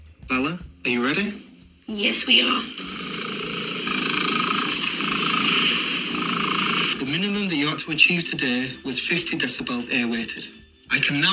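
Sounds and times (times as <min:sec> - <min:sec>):
speech: 0:00.3 - 0:03.0, 0:07.2 - 0:11.3
domestic cat purring loudly: 0:02.2 - 0:07.4.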